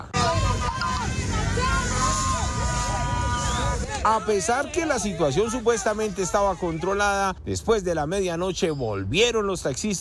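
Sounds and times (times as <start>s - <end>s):
crowd of taxi drivers shouting in a street clash with riot police: 0.0s - 7.2s
constant roar of traffic and engine noise in western Bogotá: 0.0s - 9.9s
speech: 4.0s - 9.9s.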